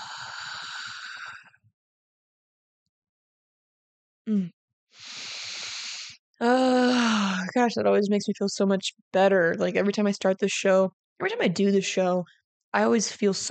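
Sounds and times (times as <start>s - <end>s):
slow deep breathing out during a guided breathing exercise: 0.0s - 1.6s, 5.0s - 6.2s
speech: 4.3s - 5.2s, 6.4s - 13.4s.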